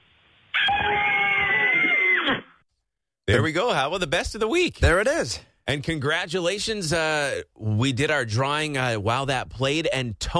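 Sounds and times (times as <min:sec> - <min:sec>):
family screaming together: 0:00.5 - 0:02.4
speech: 0:03.3 - 0:10.3.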